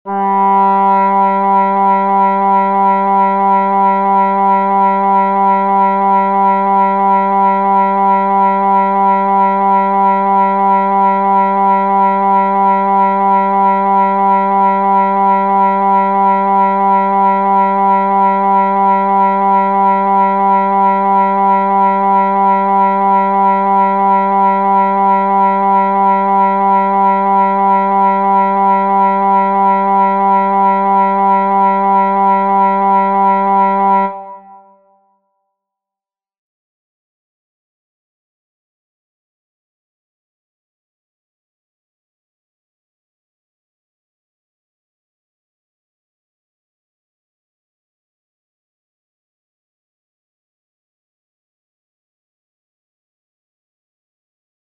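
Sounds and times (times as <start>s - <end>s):
oboe: 0.1s - 35.1s.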